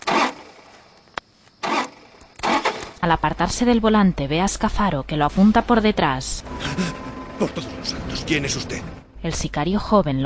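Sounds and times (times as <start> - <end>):
SUV engine starter cranking while being hotwired: 0.0 - 0.8, 1.6 - 3.1
speech: 3.1 - 10.2.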